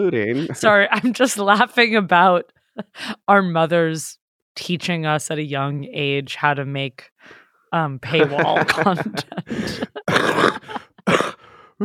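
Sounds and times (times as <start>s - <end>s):
speech: 0.0s - 10.6s
laughter: 0.3s - 1.0s, 8.1s - 11.1s
rough raspy throaty coughs: 8.3s - 11.8s.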